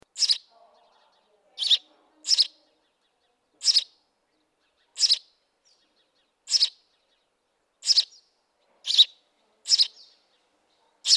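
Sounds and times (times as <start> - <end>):
house sparrow giving harsh doubled chirps: 0.0 - 11.1.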